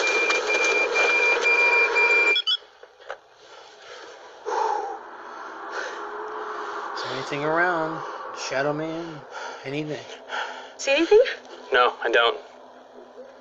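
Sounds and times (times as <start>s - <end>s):
loud electronic motion-detector alarm beeping: 0.0s - 2.6s
speech: 7.3s - 12.5s.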